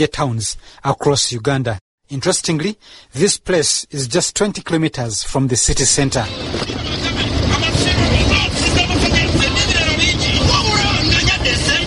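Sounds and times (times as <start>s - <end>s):
speech: 0.0s - 8.2s
rumble of trucks and passing traffic on a busy roadside: 6.0s - 11.8s
indistinct chatter from people at a roadside: 6.2s - 11.8s.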